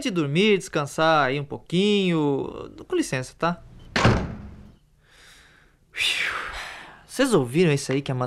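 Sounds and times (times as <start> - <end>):
speech: 0.0 - 3.7, 6.0 - 6.4, 7.2 - 8.2
door thudding shut: 3.9 - 4.7.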